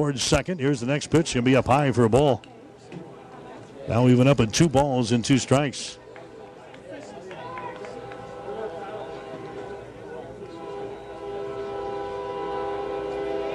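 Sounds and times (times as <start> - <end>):
speech: 0.0 - 2.6, 3.9 - 6.0
faint voices murmuring: 0.0 - 13.5
train rumbling past on nearby tracks: 7.6 - 13.5.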